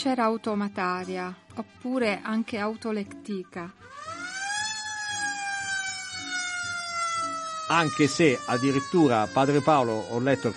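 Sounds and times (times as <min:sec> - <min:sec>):
speech: 0:00.0 - 0:04.1, 0:07.7 - 0:10.5
ambulance siren wailing: 0:03.8 - 0:10.5.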